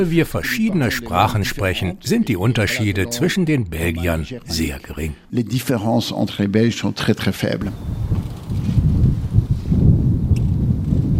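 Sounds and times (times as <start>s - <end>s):
speech: 0.0s - 8.1s
strong wind buffeting the microphone at an outdoor racetrack: 7.6s - 11.1s.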